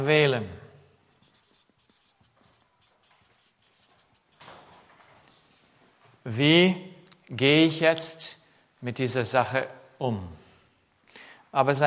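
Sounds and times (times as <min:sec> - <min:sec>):
speech: 0:00.0 - 0:00.6, 0:06.3 - 0:10.4, 0:11.6 - 0:11.8
writing with a coloured pen: 0:01.1 - 0:05.6.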